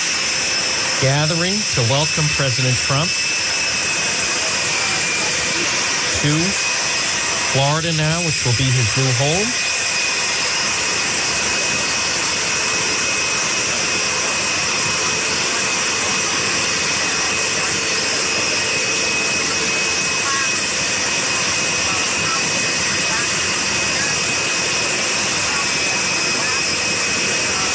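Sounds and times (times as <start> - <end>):
Air Force One jet airliner engines idling on the tarmac in Florida: 0.0 - 27.7
speech: 1.0 - 3.4, 6.2 - 6.7, 7.5 - 9.6.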